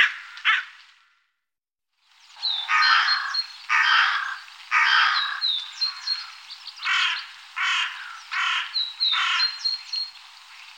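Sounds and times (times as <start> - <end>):
carrion crow cawing: 0.0 - 1.2, 2.6 - 9.6.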